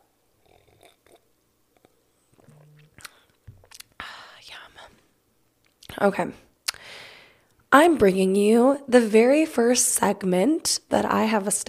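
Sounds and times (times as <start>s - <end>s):
person sipping a mimosa with a breathy slurp: 0.4s - 3.9s
soft mouth smacks and clicks: 0.4s - 4.0s
faint swallow: 1.8s - 3.8s
speech: 6.0s - 6.5s, 7.7s - 11.6s.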